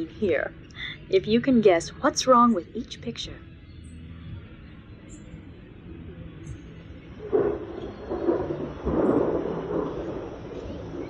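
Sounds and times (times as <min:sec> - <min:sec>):
speech: 0:00.0 - 0:03.5
wind at night: 0:00.0 - 0:11.0
rain at night: 0:07.2 - 0:11.0
thunder rumbling at night: 0:07.2 - 0:11.0.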